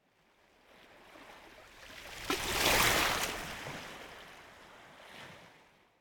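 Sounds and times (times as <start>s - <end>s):
surf water small wave lapping on the coast: 0.9s - 5.5s.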